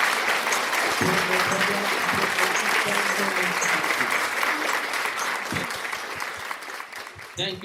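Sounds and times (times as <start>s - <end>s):
congregation applauding: 0.0s - 7.6s
voices calling out: 1.0s - 5.8s
speech: 7.4s - 7.6s.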